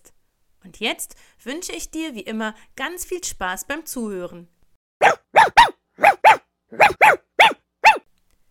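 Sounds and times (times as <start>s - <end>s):
speech: 0.6s - 4.6s
dog barking gruffly: 5.0s - 8.1s.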